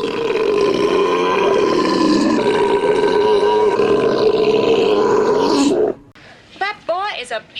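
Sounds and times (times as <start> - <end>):
loud belching in a contest: 0.0 - 6.1.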